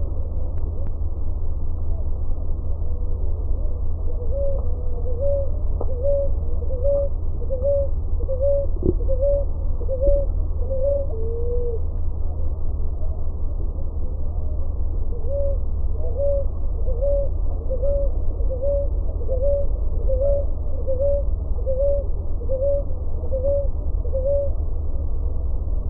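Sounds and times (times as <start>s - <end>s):
low background rumble: 0.0s - 25.8s
ruddy ground dove cooing: 4.1s - 11.8s, 15.1s - 24.6s.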